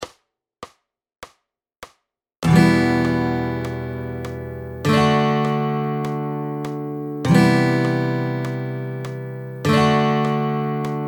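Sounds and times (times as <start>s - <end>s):
fingerstyle chords: 2.4s - 11.0s.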